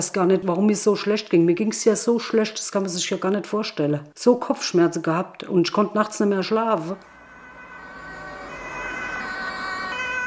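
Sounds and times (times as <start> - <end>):
speech: 0.0 - 7.1
ambulance siren wailing: 7.0 - 10.2.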